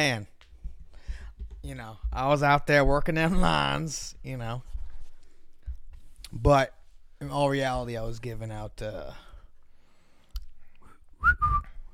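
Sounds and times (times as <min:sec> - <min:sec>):
speech: 0:00.0 - 0:00.3, 0:01.6 - 0:04.7, 0:06.3 - 0:09.2, 0:11.2 - 0:11.7
brief two-note whistle: 0:11.2 - 0:11.9.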